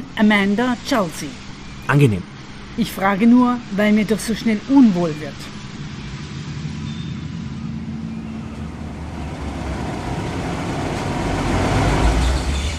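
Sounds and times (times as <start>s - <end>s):
speech: 0.2s - 5.5s
car engine running on the parking deck of a large ship: 5.5s - 12.7s.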